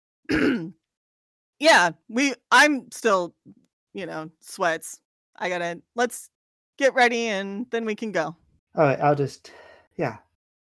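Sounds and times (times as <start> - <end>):
man clearing his throat: 0.3 - 0.8
speech: 0.3 - 0.8, 1.6 - 10.2.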